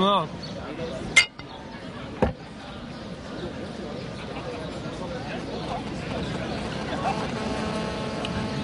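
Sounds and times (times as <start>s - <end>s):
speech: 0.0s - 1.2s
murmuring voices: 0.5s - 8.6s
glasses clinking in a toast: 1.2s - 1.5s.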